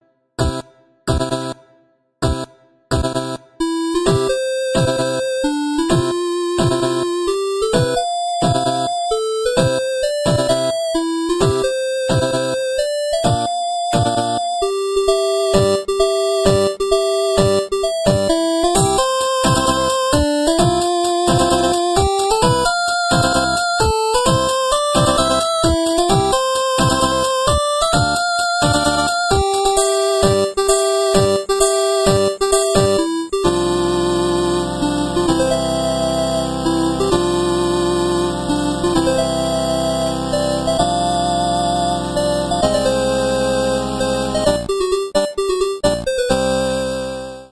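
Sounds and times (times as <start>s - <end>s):
8-bit mobile phone ringtone music: 0.4s - 1.6s, 2.2s - 47.5s.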